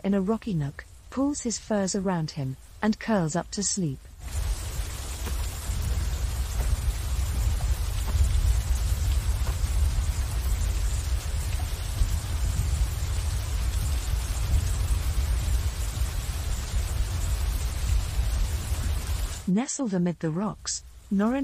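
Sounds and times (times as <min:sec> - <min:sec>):
heavy rain pouring on forest leaves and foliage: 0:00.0 - 0:01.2, 0:04.1 - 0:19.5, 0:20.4 - 0:21.4
speech: 0:00.0 - 0:04.6, 0:19.6 - 0:21.4
deep low rumble: 0:04.2 - 0:19.5.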